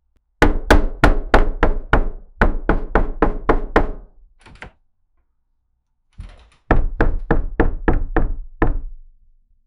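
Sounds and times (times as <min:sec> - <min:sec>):
frantic banging on a wooden building: 0:00.4 - 0:04.0, 0:06.6 - 0:08.8.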